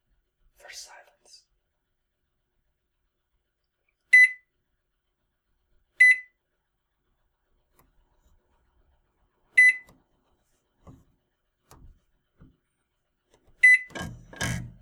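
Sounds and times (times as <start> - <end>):
microwave keypad buttons beeping: 4.2 - 4.4, 6.0 - 6.3, 9.6 - 9.9, 13.6 - 14.7.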